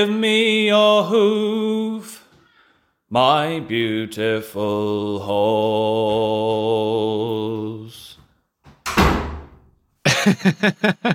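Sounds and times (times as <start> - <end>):
speech: 0.0 - 2.2, 3.1 - 8.0, 10.2 - 11.1
door slammed firmly by a three-year-old child: 8.7 - 9.8
laughter: 10.1 - 11.1.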